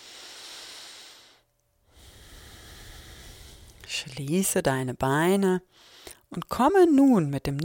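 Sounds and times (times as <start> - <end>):
deep breathing during a guided exercise: 0.0 - 3.9, 5.7 - 6.2
speech: 4.0 - 7.6.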